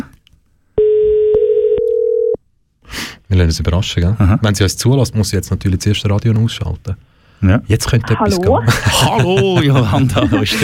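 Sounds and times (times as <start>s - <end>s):
telephone ringing tone during an outgoing call: 0.8s - 2.4s
speech: 3.3s - 10.6s
laughter: 8.3s - 10.6s.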